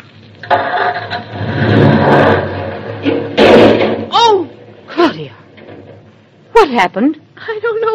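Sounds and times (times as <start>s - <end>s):
speech: 0.4s - 1.4s, 6.7s - 7.9s
car jolting sharply: 0.4s - 5.0s
car engine cranking, starting and revving as it lurches in reverse: 0.6s - 2.8s.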